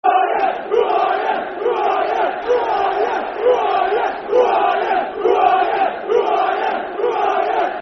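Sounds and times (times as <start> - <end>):
football crowd chanting: 0.0 - 7.8.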